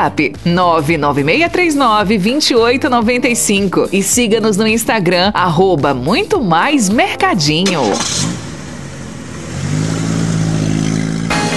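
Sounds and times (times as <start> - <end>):
speech: 0.0 - 8.4
car engine idling and revving: 7.5 - 11.5.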